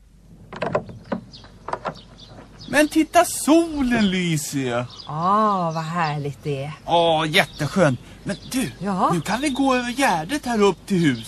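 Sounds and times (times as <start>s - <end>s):
door hinges creaking as a door opens: 0.4s - 2.7s
speech: 2.7s - 11.2s.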